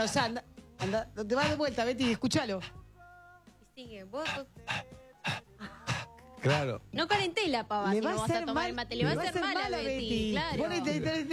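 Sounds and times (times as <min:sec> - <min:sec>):
speech: 0:00.0 - 0:02.8, 0:03.8 - 0:05.4, 0:06.4 - 0:11.3
person imitating a small female dog panting: 0:00.8 - 0:02.8, 0:04.2 - 0:06.6.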